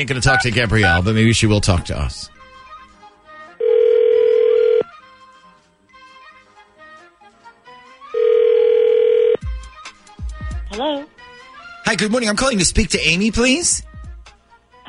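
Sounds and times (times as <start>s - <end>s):
speech: 0.0s - 2.4s, 11.9s - 13.9s
soft music: 0.0s - 14.8s
phone ringback tones: 3.6s - 4.9s, 8.2s - 9.4s.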